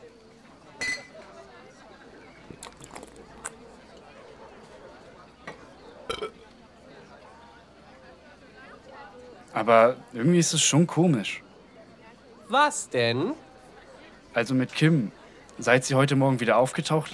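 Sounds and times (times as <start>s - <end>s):
soft murmuring voices: 0.0s - 17.1s
glasses clinking in a toast: 0.8s - 1.2s, 6.1s - 6.5s
speech: 9.6s - 11.4s, 12.5s - 13.4s, 14.4s - 17.1s.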